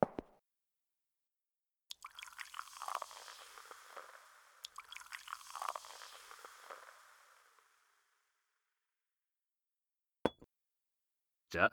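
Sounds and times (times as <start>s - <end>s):
champagne being poured into two glasses: 1.9s - 8.3s
speech: 11.5s - 11.7s.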